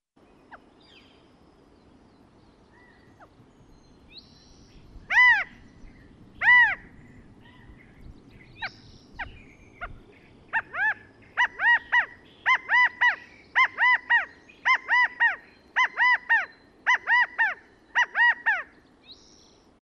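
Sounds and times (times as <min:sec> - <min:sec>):
California quail: 0:08.6 - 0:18.7.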